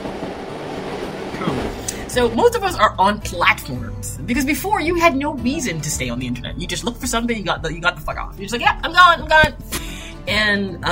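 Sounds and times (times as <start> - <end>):
train arriving, rolling along the rails: 0.0 - 5.1
speech: 2.1 - 9.6, 10.3 - 10.9.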